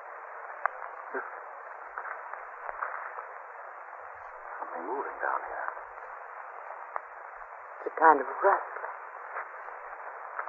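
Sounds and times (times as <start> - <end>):
steady snake-like hiss: 0.0 - 10.4
speech: 1.1 - 1.4, 4.8 - 5.8, 8.0 - 8.8.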